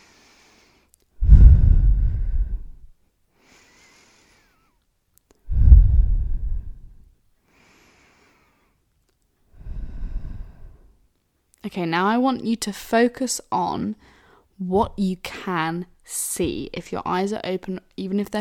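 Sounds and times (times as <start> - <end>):
deep breaths during a guided relaxation exercise: 0.0 - 4.8, 5.5 - 8.8, 9.6 - 11.0, 14.0 - 14.5
speech: 11.6 - 18.4.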